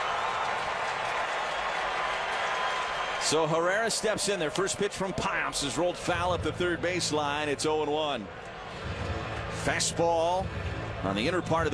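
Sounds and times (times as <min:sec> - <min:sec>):
stadium crowd clapping: 0:00.0 - 0:05.3
baseball stadium crowd cheering: 0:00.0 - 0:11.7
speech: 0:03.2 - 0:08.9, 0:09.6 - 0:11.7.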